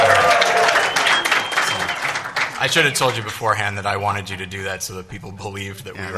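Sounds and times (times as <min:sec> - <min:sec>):
live audience cheering with scattered shouts: 0:00.0 - 0:01.4
live audience clapping: 0:00.0 - 0:03.5
speech: 0:02.6 - 0:06.1.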